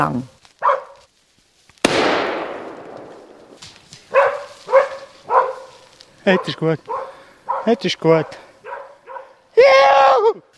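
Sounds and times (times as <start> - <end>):
speech: 0.0 - 0.3, 6.3 - 7.0, 7.6 - 8.4
hunting dog barking in a forest: 0.6 - 1.0, 4.1 - 9.4
single sharp bang echoing in a forest: 1.8 - 3.6.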